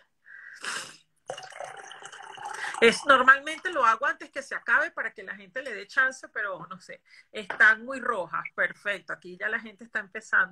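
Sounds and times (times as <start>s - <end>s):
person taking a sip of water: 0.4s - 2.8s
speech: 2.8s - 10.5s.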